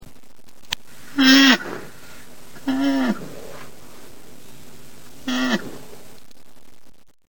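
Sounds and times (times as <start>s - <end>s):
low hiss: 0.0s - 7.2s
rhinoceros bleating moans: 1.0s - 6.1s.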